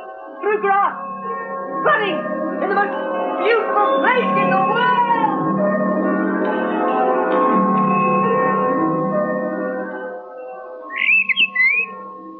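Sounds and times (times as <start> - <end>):
sustained low musical drone: 0.0 - 12.3
speech: 0.4 - 4.9
bird calling in quick bright squawking chirps: 10.9 - 12.0.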